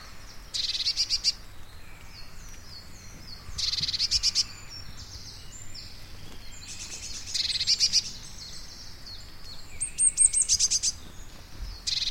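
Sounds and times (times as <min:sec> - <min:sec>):
blue tit calling at Everdon Stubbs: 0:00.5 - 0:01.4, 0:02.0 - 0:12.0
blue tit twittering at Everdon Stubbs: 0:00.5 - 0:01.4, 0:03.0 - 0:08.8, 0:09.5 - 0:12.0.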